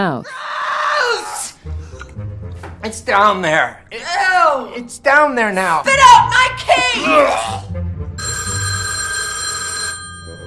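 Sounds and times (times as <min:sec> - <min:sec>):
speech: 0:00.0 - 0:00.4, 0:02.9 - 0:07.6
telephone bell ringing with a bright metallic jangle: 0:08.2 - 0:10.4.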